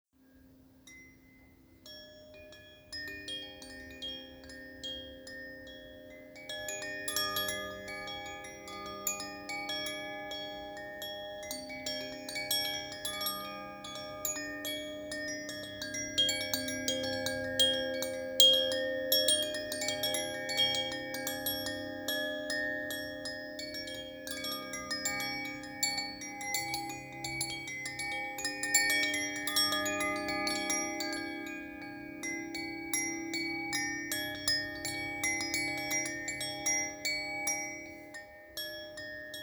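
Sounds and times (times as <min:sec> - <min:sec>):
chakra chimes for the root chakra: 0:00.2 - 0:39.4.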